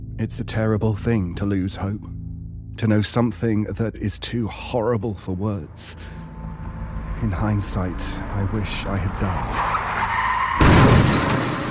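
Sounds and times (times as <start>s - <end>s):
speech: 0.2s - 2.2s, 2.8s - 6.2s, 7.2s - 9.9s
car tires screeching: 6.1s - 11.6s
loud crash of a car hitting a pedestrian: 10.6s - 11.6s.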